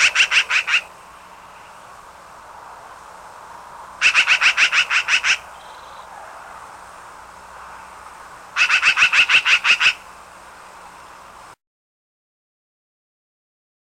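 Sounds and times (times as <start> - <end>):
black-billed magpie chatter: 0.0 - 0.9, 4.0 - 6.1, 8.6 - 10.0.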